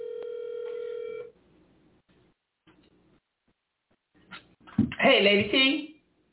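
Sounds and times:
loud steady telephone tone: 0.0s - 1.3s
speech: 5.0s - 5.9s.

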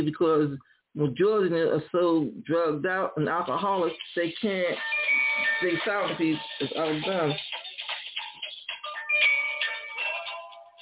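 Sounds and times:
speech: 0.0s - 7.6s
mobile phone ringtone with bright electronic melody: 4.8s - 10.8s.

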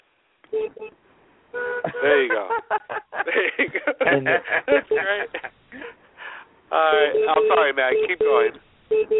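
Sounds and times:
horn of a car being driven honking over a phone line: 1.5s - 2.3s
laughter: 1.9s - 6.0s
speech: 2.0s - 6.0s, 6.7s - 9.1s.

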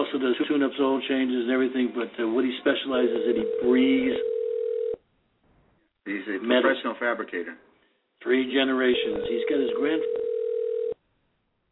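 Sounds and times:
speech: 0.2s - 4.4s, 6.1s - 10.3s
telephone ringing on the line: 3.1s - 5.0s, 8.9s - 11.0s.

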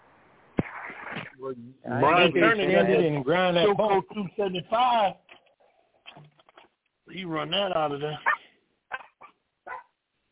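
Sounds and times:
speech: 1.4s - 5.2s, 7.1s - 8.3s
dog barking: 8.2s - 10.0s.

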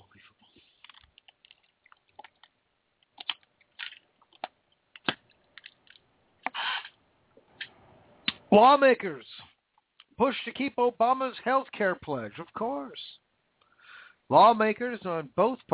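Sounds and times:
person drinking a glass of water with wet mouth sounds: 0.4s - 4.5s
speech: 8.5s - 9.3s, 10.2s - 13.1s, 14.3s - 15.7s.

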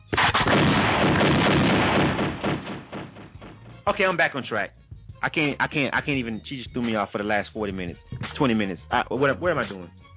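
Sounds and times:
gunshot sound effects: 0.0s - 3.8s
speech: 3.9s - 10.0s.

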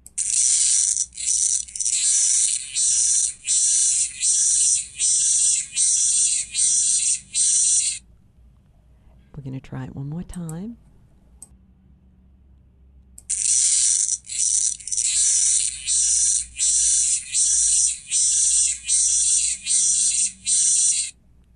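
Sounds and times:
faint low hum: 0.1s - 21.5s
locust raspy buzzing: 0.2s - 8.0s, 13.3s - 21.1s
speech: 9.4s - 10.9s.

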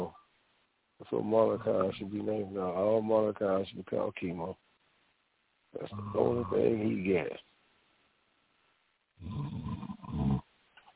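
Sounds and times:
speech: 1.0s - 4.6s, 5.7s - 7.5s, 9.2s - 9.8s
person snoring: 9.2s - 10.4s.

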